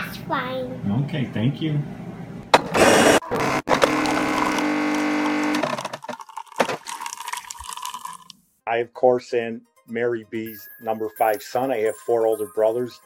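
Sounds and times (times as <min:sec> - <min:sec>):
speech: 0:00.3 - 0:02.1, 0:08.7 - 0:13.0
coffee maker brewing with mechanical whir and hiss: 0:02.6 - 0:07.0
coffee maker gurgling and sputtering as water passes through: 0:02.8 - 0:08.3.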